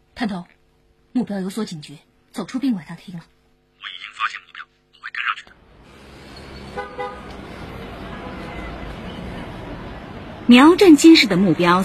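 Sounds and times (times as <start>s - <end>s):
speech: 0.2s - 0.6s, 1.2s - 4.0s, 10.5s - 11.8s
crowded street traffic rumbling: 5.2s - 11.8s
car horns honking: 6.4s - 7.5s.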